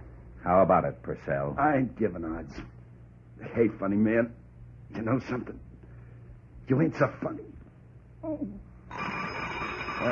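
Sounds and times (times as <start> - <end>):
speech: 0.5 - 2.8, 3.4 - 5.7, 6.7 - 7.5, 8.2 - 9.1
telephone bell ringing: 8.9 - 10.1.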